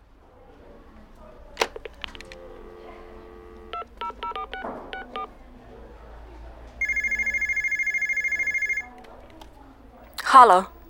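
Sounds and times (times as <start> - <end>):
DTMF keypad tones as a number is dialed at a post office: 1.8 - 5.3, 6.8 - 9.0
speech: 10.3 - 10.7.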